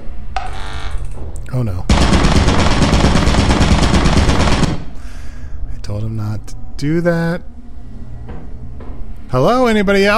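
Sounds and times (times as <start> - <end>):
speech: 1.5 - 2.4, 5.9 - 7.5, 9.3 - 10.1
rapid continuous turret gunfire in a video game: 1.9 - 5.0.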